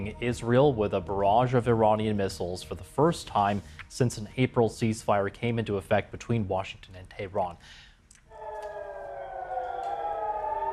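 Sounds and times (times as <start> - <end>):
speech: 0.0 - 7.9
air raid sirens wailing over northern Israel during a missile strike: 8.3 - 10.7.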